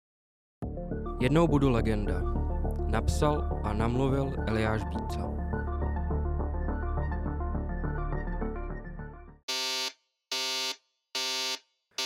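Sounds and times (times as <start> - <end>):
music: 0.6 - 9.4
speech: 1.2 - 5.4
alarm clock beeping: 9.5 - 12.0.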